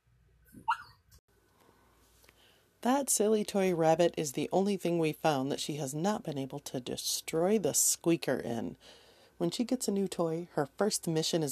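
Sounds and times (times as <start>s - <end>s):
pug dog barking and whining: 0.6s - 1.0s
speech: 2.8s - 11.5s.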